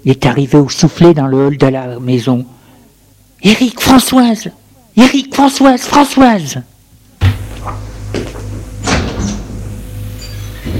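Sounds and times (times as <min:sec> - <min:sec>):
speech: 0:00.0 - 0:02.6, 0:03.4 - 0:06.7
low steady hum: 0:00.0 - 0:10.7
door slamming shut: 0:08.8 - 0:09.6.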